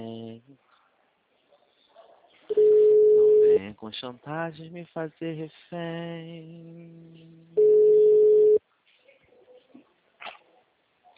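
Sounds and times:
telephone busy tone after a dropped call: 2.5 - 3.6, 7.6 - 8.6
speech: 3.9 - 7.3.

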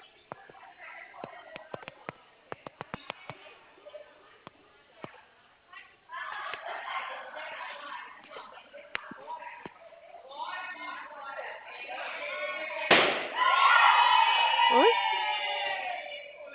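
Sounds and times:
murmur of people talking: 0.0 - 16.5
balloons popping: 12.9 - 13.4.

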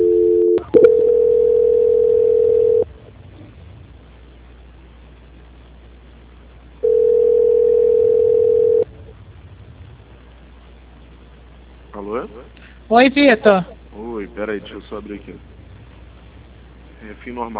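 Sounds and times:
telephone line tone during a call transfer on a bank's customer service line: 0.0 - 2.9, 6.8 - 8.9
low telephone line noise: 0.0 - 17.5
speech: 13.0 - 13.7, 14.4 - 15.5, 17.0 - 17.5.

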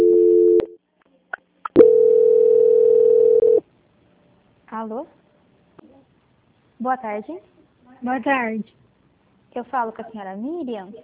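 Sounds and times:
telephone line tones during a call transfer: 0.0 - 0.8, 1.8 - 3.6
speech: 4.8 - 5.2, 6.8 - 8.8, 9.5 - 11.0.

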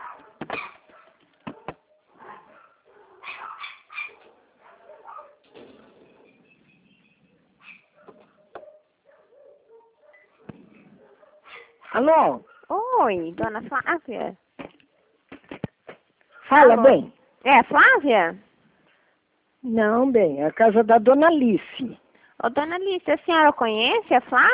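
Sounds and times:
several dogs at a house barking and yipping over a phone line: 0.0 - 12.7
speech: 12.0 - 14.4, 16.5 - 18.4, 19.6 - 24.5.

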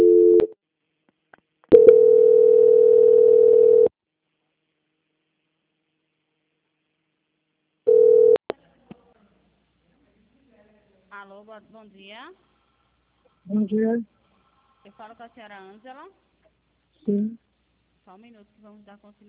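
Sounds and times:
telephone line tone during a call transfer: 0.0 - 0.5, 1.7 - 3.9, 7.9 - 8.4
speech: 11.6 - 12.6, 13.4 - 14.2, 14.8 - 16.3, 17.0 - 17.4, 18.1 - 19.2.

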